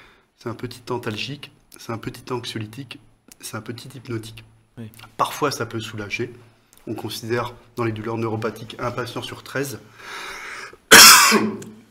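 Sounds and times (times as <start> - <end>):
short quiet breath: 0.0 - 0.4, 9.9 - 10.8
speech: 0.4 - 10.4, 11.3 - 11.7
loud harsh cough with a rasping tail: 10.6 - 11.8.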